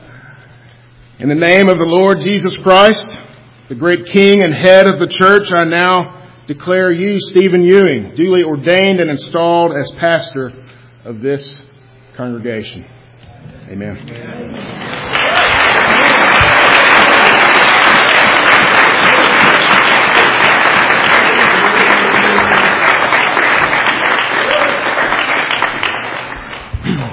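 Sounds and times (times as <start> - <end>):
speech: 1.2 - 15.4
large audience applauding: 14.5 - 26.7
scattered cheers: 14.9 - 25.6.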